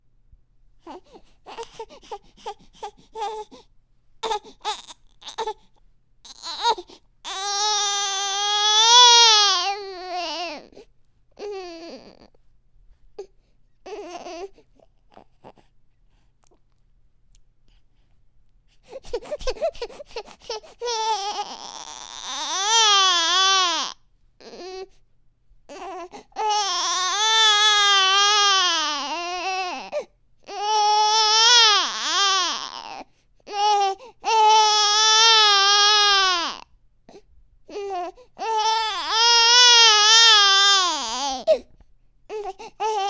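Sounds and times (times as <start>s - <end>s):
disappointed baby crying: 4.2s - 10.8s, 11.4s - 12.3s, 13.9s - 15.2s, 19.0s - 24.9s, 25.7s - 36.7s, 37.7s - 41.7s, 42.3s - 43.0s.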